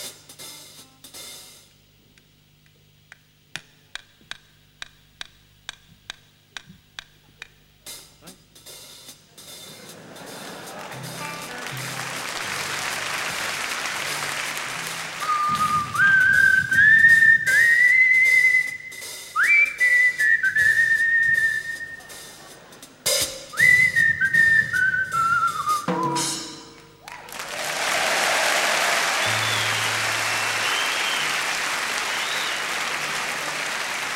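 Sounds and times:
laughter: 9.6 - 15.4, 22.0 - 23.1, 27.4 - 34.1
man whistling a clear wavering tune: 15.2 - 22.3, 23.5 - 26.4, 29.2 - 32.7.

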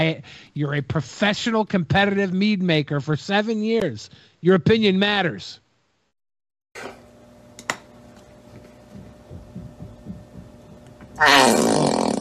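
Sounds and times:
speech: 0.0 - 5.6, 6.8 - 7.0, 11.2 - 12.1
squeeze bottle sputtering a fart-like noise: 11.2 - 12.2.

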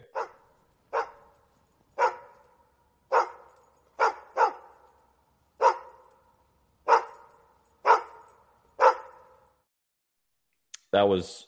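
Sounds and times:
dog barking sharply: 0.0 - 1.4, 2.0 - 4.9, 5.6 - 6.2, 6.8 - 9.4
speech: 10.9 - 11.4.

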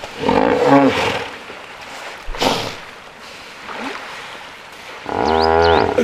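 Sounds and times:
hippos bellowing and grunting: 0.0 - 1.4, 5.0 - 6.0
hippo long throaty wheezing honk: 5.8 - 6.0.

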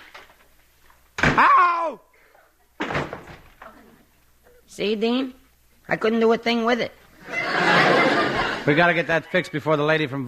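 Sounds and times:
speech: 1.4 - 2.1, 4.7 - 7.7, 8.7 - 10.2
apartment front door banging open: 2.8 - 3.6
laughter: 7.2 - 9.9.

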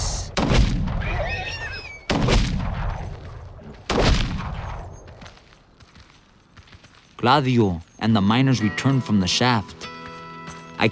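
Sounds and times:
gunshots fired down at wounded horses near a mine shaft: 0.3 - 1.2, 2.1 - 5.0
speech: 7.2 - 9.8.

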